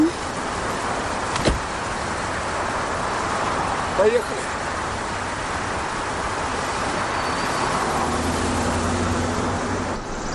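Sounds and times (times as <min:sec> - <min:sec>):
engine and road noise: 0:00.0 - 0:10.3
car door shutting: 0:01.3 - 0:01.8
speech: 0:04.0 - 0:04.5.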